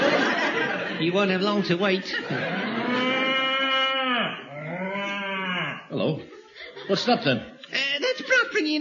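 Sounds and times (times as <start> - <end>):
laughter: 0.0 - 3.5, 6.0 - 7.5
speech: 1.0 - 3.1, 6.0 - 6.3, 6.9 - 7.9, 8.6 - 8.7
cow mooing: 2.6 - 5.9.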